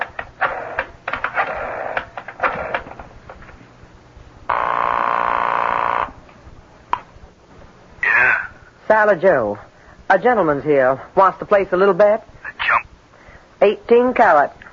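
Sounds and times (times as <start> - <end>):
telephone buzzing ring: 0.4 - 2.9, 4.5 - 6.2
speech: 8.9 - 12.3, 13.6 - 14.6.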